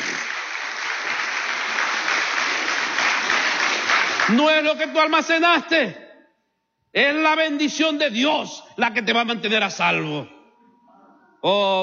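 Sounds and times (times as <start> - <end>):
audience applauding: 0.0 - 4.7
speech: 4.3 - 6.0, 6.9 - 10.4, 11.4 - 11.8.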